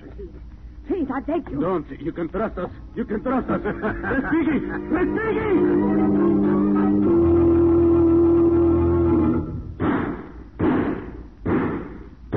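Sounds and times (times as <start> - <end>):
speech: 1.1 - 6.2
laughter: 2.4 - 9.2
heavy gunshots: 9.8 - 12.3.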